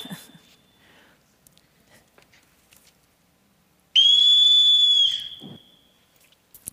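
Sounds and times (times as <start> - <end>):
shrill whistle blast to summon children: 4.0 - 6.0.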